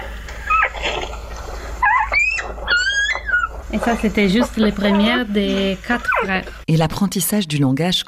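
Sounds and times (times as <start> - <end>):
newborn wolf pup whining: 0.4 - 1.1, 1.8 - 3.7, 4.4 - 5.2, 6.0 - 6.4
speech: 3.7 - 8.0.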